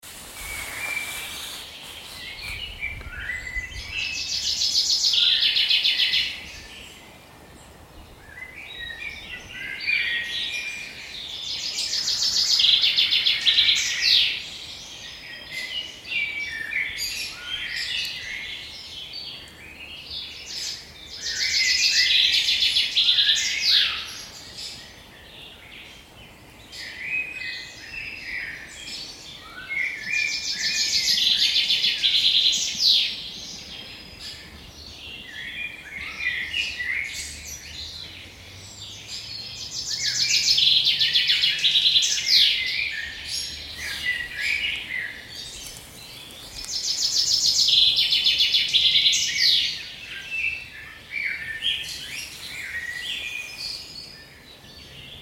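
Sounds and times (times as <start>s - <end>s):
birds, natural sound: 0.0s - 55.2s.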